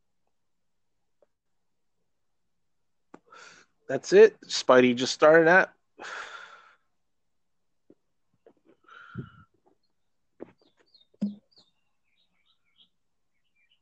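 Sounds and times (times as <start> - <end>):
speech: 3.4 - 6.3
breathy exhale: 6.0 - 6.8, 8.8 - 9.5
bird chirping: 8.4 - 13.8.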